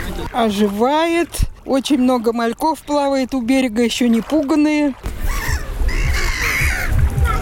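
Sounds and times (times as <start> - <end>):
speech: 0.3 - 5.4
seagulls calling over the seashore: 5.1 - 7.3.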